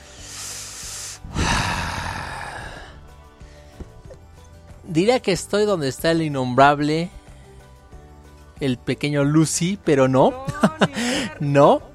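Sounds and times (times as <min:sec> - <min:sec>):
electric fan running with airy whoosh: 0:01.2 - 0:02.3
speech: 0:04.9 - 0:07.2, 0:08.6 - 0:11.9
laughter: 0:10.5 - 0:11.3.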